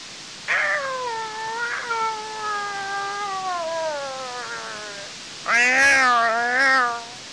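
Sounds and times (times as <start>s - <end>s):
cat meowing: 0.5s - 7.2s.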